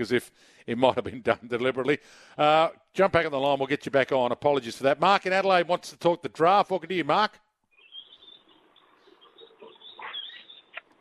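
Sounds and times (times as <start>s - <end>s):
speech: 0.0s - 7.4s
birds chirping and twittering in the open air: 7.7s - 10.9s.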